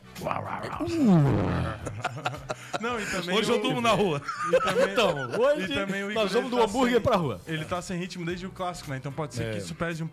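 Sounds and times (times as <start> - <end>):
person imitating a lion's roar: 0.2 - 1.9
speech: 0.2 - 10.1
laughter: 1.0 - 6.3.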